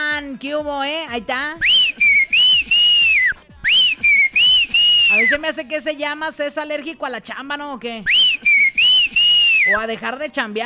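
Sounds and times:
speech: 0.3s - 1.8s, 5.2s - 8.5s, 9.7s - 10.6s
person whistling a tune: 1.6s - 5.4s, 8.1s - 9.8s.

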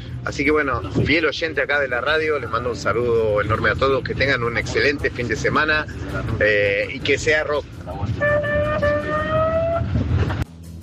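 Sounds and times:
low traffic rumble: 0.0s - 10.8s
speech: 0.2s - 8.5s
ambulance siren: 8.1s - 10.1s.

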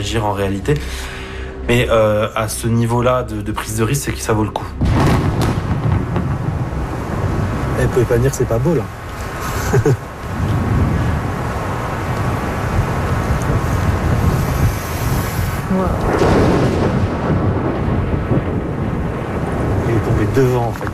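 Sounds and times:
speech: 0.0s - 5.0s, 7.8s - 9.0s, 9.7s - 10.1s, 20.4s - 20.9s
thunder from a lightning strike about 1.5 km away: 4.6s - 20.9s.

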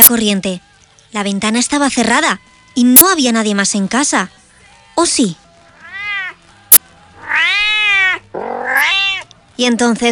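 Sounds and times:
speech: 0.1s - 4.4s, 5.0s - 5.4s, 9.6s - 10.1s
house cat meowing loud and whiny: 5.7s - 6.4s, 7.2s - 9.3s.

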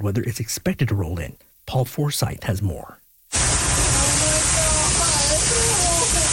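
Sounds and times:
speech: 0.0s - 3.5s
rushing floodwater roar after record-breaking storms: 3.3s - 6.3s.

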